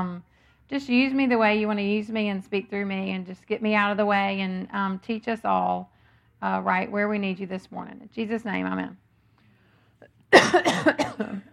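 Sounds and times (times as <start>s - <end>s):
speech: 0.0s - 9.0s, 10.0s - 11.5s
harsh coughs: 10.3s - 11.5s.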